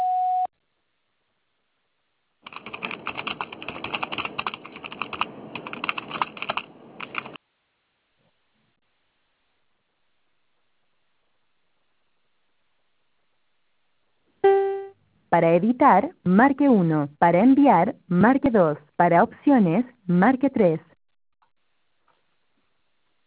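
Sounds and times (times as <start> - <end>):
brief tone: 0.0 - 0.5, 14.4 - 15.0
voicemail system short electronic beep: 0.0 - 0.5, 14.4 - 15.0
dense rapid clicking: 2.4 - 7.4
speech: 15.3 - 20.9.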